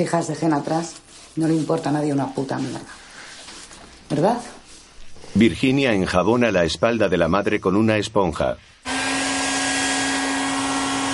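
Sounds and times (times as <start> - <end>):
speech: 0.0 - 3.0, 4.1 - 4.6, 5.3 - 8.7
hair dryer blowing a woman's hair: 8.9 - 11.1.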